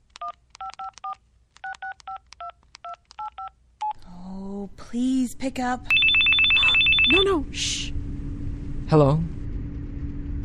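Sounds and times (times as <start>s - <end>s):
cell phone keypad dialing tones: 0.2s - 4.0s, 5.9s - 7.2s
speech: 4.9s - 6.1s, 7.1s - 8.0s, 8.9s - 9.4s.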